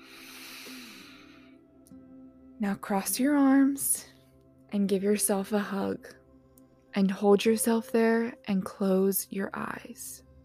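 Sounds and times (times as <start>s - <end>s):
deep breath drawn in slowly: 0.0s - 1.7s
speech: 2.6s - 4.1s, 4.7s - 6.2s, 6.9s - 10.2s.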